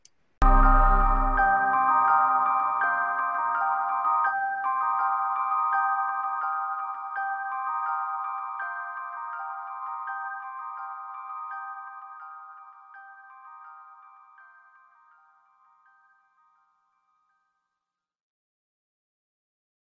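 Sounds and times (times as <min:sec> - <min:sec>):
tubular bells ringing in a musical piece: 0:00.4 - 0:12.5.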